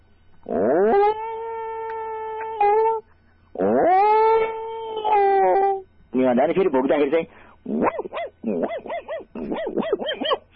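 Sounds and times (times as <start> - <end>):
human voice imitating a dog howling: 0.5 - 3.0, 3.6 - 5.8, 7.7 - 10.4
speech: 6.3 - 10.4.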